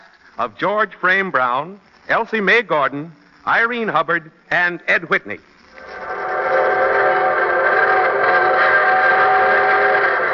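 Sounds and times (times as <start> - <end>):
speech: 0.4 - 5.5
evening steam train whistle wailing: 6.0 - 10.3.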